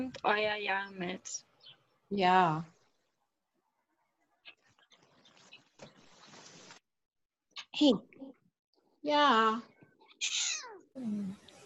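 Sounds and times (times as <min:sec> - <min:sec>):
speech: 0:00.0 - 0:01.5, 0:02.1 - 0:02.8, 0:07.8 - 0:08.4, 0:09.0 - 0:11.4
cat meowing: 0:10.1 - 0:10.9.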